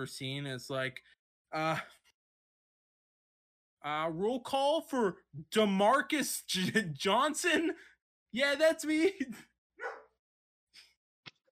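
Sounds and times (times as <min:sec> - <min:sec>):
speech: 0:00.0 - 0:02.0, 0:03.8 - 0:10.0
dog barking: 0:09.8 - 0:10.2.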